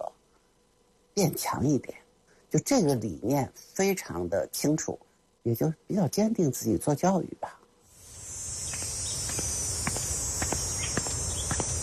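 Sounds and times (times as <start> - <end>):
cicadas buzzing in midsummer June: 0.0 - 11.8
speech: 1.2 - 7.6.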